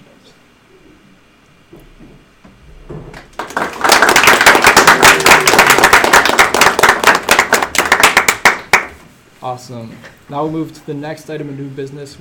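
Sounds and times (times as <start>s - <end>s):
group applause at a meeting: 3.1s - 9.0s
speech: 9.5s - 12.2s.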